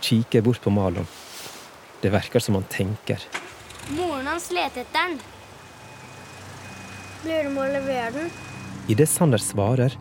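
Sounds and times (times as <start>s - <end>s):
speech: 0.0s - 1.2s, 2.0s - 5.4s, 7.2s - 9.9s
broad road noise: 0.0s - 9.9s
small truck engine rumble: 3.4s - 9.9s
small truck reversing beeper at the end of a bridge: 4.8s - 9.9s.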